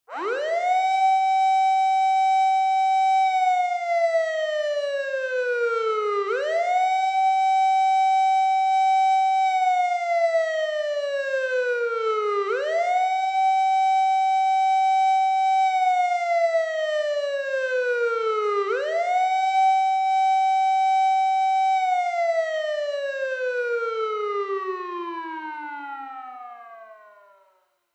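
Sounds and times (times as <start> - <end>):
police car siren: 0.1 - 27.6.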